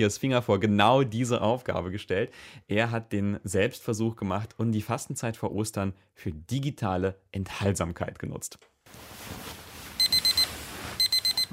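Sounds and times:
speech: 0.0 - 9.6
smartphone alarm beeping in the morning: 10.0 - 11.5.

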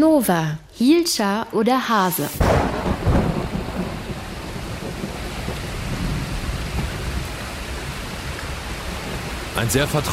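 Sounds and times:
speech: 0.1 - 3.1, 9.6 - 10.1
steady rainfall: 2.1 - 10.1
deep rumbling burst: 2.4 - 8.1.

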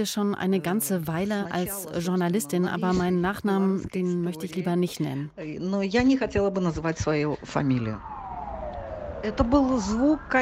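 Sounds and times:
speech: 0.0 - 8.2, 9.2 - 10.4
ambulance siren wailing along a city street in Minsk Belarus: 7.6 - 10.4.

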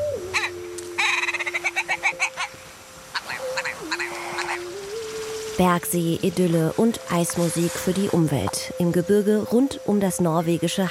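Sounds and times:
ptarmigan cackling in a snowy mountain landscape around Hallingdal, Norway: 0.3 - 4.7
speech: 5.6 - 10.8.

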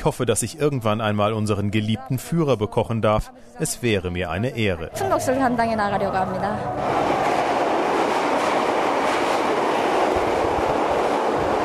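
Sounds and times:
speech: 0.0 - 7.2
brief voice-like tone: 1.8 - 6.8
old subway train carriages rumbling at steady speed: 3.7 - 11.6.

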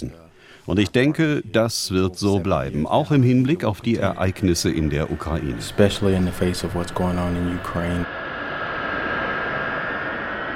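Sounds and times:
speech: 0.0 - 8.2
fighter jet taking off: 3.2 - 10.5
huge military transport aircraft taxiing along an airfield at a US air base: 3.9 - 10.5.

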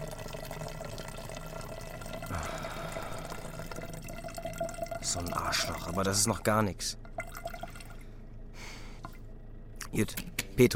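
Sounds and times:
man urinating into a bottle: 0.0 - 6.4, 7.1 - 8.1
speech: 5.1 - 7.0, 10.0 - 10.7.

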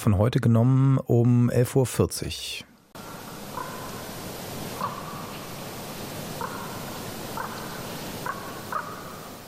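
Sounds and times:
speech: 0.0 - 2.7
soft steady hiss in outdoor elk habitat: 0.0 - 9.4
faint bird calls in elk habitat: 3.0 - 9.4.

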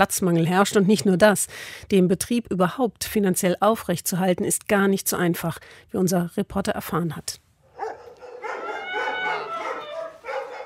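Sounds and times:
speech: 0.0 - 7.4
several dogs barking and howling at an animal shelter: 7.7 - 10.6.

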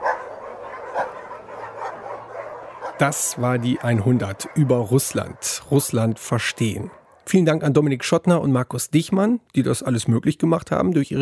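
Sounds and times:
dogs barking with yelps and woofs: 0.0 - 7.3
speech: 3.0 - 11.2.

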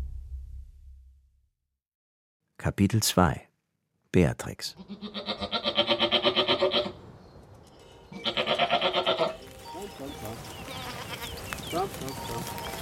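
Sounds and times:
speech: 2.7 - 3.5, 4.1 - 5.2
herd of Toggenburg dairy goats bleating on their way to the heath in Brandenburg: 4.7 - 7.0, 8.1 - 9.6, 10.3 - 12.8
rustling: 9.1 - 12.8.

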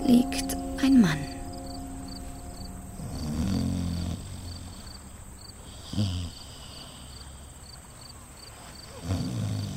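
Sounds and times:
crickets chirping: 0.0 - 9.7
speech: 0.1 - 1.3
man snoring in a rocking rowboat: 3.0 - 4.9, 5.6 - 7.2, 9.0 - 9.7.

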